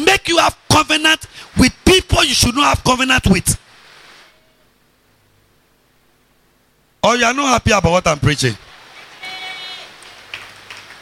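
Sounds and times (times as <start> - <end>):
faint high whine: 0.0 - 10.0
speech: 0.3 - 3.6, 7.0 - 8.6
steady rain: 0.4 - 6.2, 8.6 - 11.0.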